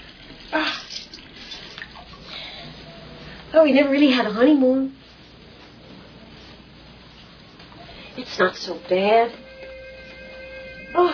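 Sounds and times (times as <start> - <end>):
hot water pouring into a bathtub: 0.0 - 3.5
speech: 3.6 - 5.0, 8.4 - 9.5.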